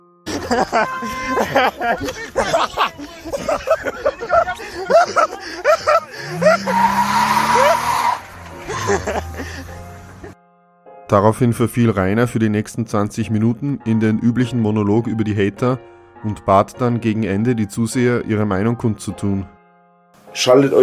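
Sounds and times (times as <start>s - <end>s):
laughter: 0.3s - 7.9s, 8.5s - 10.4s
speech: 0.5s - 7.9s, 8.8s - 9.3s, 11.1s - 19.6s, 20.4s - 20.8s
man shouting: 0.7s - 2.9s
car tires squealing: 5.8s - 10.4s
car engine revving: 6.2s - 10.3s.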